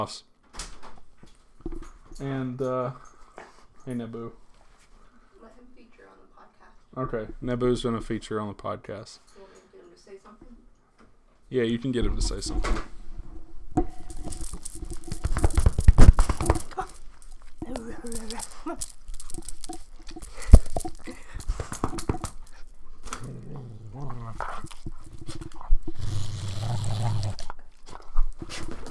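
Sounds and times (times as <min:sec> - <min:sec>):
speech: 0:00.0 - 0:00.3, 0:02.2 - 0:03.1, 0:03.9 - 0:04.4, 0:06.9 - 0:09.5, 0:11.5 - 0:12.9
scuffling: 0:13.4 - 0:28.8
dog growling: 0:13.8 - 0:28.8.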